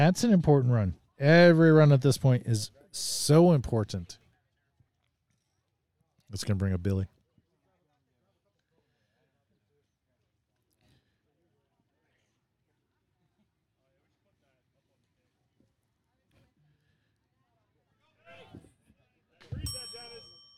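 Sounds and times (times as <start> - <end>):
speech: 0.0 - 4.2, 6.3 - 7.2
bell rung to mark a pitch at a baseball game: 19.5 - 20.5.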